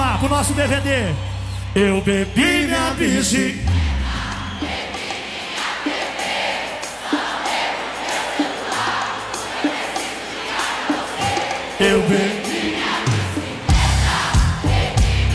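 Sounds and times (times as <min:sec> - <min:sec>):
live pagode concert audience roaring and shouting: 0:00.0 - 0:15.3
speech: 0:00.2 - 0:03.8, 0:04.6 - 0:04.8, 0:11.8 - 0:12.4
rhythmic beats: 0:03.5 - 0:15.3.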